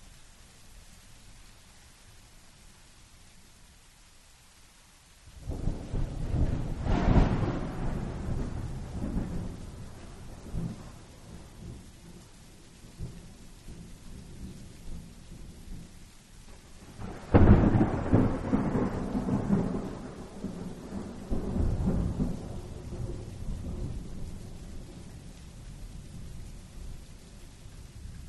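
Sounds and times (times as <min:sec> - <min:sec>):
steady hiss of rain: 0:00.0 - 0:28.2
long rolls of thunder in a thunderstorm: 0:05.4 - 0:11.8, 0:16.9 - 0:25.0.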